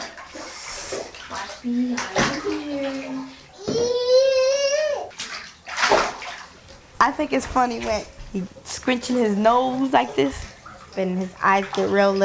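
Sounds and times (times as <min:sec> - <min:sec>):
child splashing water in a bathtub: 0:00.0 - 0:12.2
speech: 0:01.3 - 0:03.2, 0:07.0 - 0:12.2
child babbling: 0:01.7 - 0:05.1
child squealing: 0:03.6 - 0:05.1.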